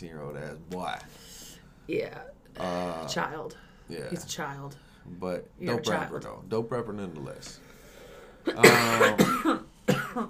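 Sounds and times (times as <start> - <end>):
speech: 0.0 - 7.8, 8.4 - 10.2
harsh raspy coughs: 8.4 - 10.2.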